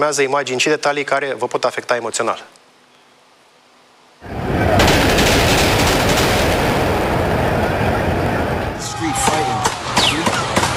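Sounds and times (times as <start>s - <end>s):
speech: 0.0s - 2.6s
outdoor crowd noise in a city square: 4.2s - 10.7s
gunshots fired during a brawl in Times Square New York: 4.6s - 10.7s
people shouting: 6.6s - 10.7s.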